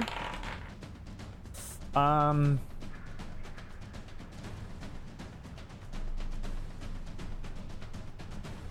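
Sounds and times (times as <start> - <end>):
dice rolling on a hard tabletop: 0.0 - 0.8
speech: 2.0 - 2.7.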